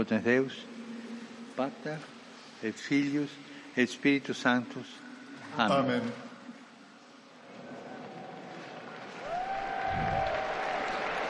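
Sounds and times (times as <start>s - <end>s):
speech: 0.0s - 0.8s, 1.6s - 6.2s
wind: 7.4s - 11.2s
large outdoor crowd applause in a public square: 7.9s - 11.2s.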